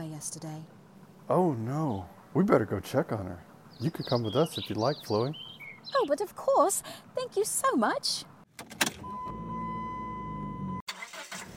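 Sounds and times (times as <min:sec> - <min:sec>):
car engine rumble with a thin whine pulling away: 0:00.0 - 0:11.5
speech: 0:00.2 - 0:08.8
car clunk: 0:08.5 - 0:09.4.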